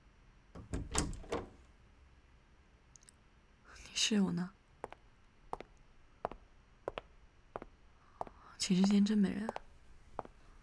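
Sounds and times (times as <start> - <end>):
door opening with latch and frame clunks and rattles: 0.6 - 1.7
speech: 4.0 - 4.6, 8.7 - 9.6.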